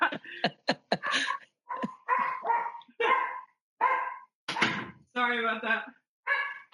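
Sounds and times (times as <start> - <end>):
laughter: 0.0 - 2.4
dog yips: 1.0 - 4.2, 6.3 - 6.6
several dogs barking: 1.0 - 4.8, 6.3 - 6.7
speech: 5.3 - 6.0.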